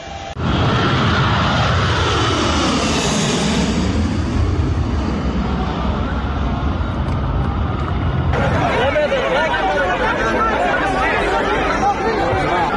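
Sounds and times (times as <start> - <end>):
airplane engine running loudly at an airport: 0.0 - 12.7
crowd chatter under airplane wings: 5.2 - 12.7.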